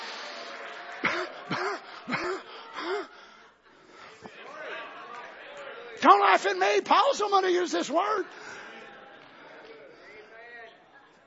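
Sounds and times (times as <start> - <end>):
low murmur of noise: 0.0 - 6.4, 7.2 - 11.2
loud voiced coughs: 1.0 - 3.1
speech: 1.5 - 2.5, 6.0 - 8.6.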